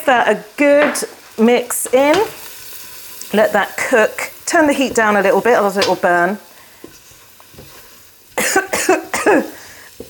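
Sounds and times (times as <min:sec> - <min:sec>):
speech: 0:00.0 - 0:02.4, 0:03.3 - 0:06.5, 0:08.9 - 0:09.6
person coughing from cumin spice fumes while cooking: 0:08.4 - 0:09.6.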